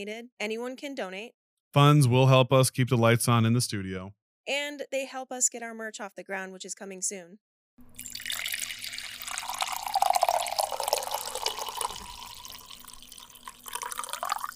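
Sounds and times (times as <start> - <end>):
speech: 0.0 - 8.2
coffee pouring into a cup: 7.9 - 14.5.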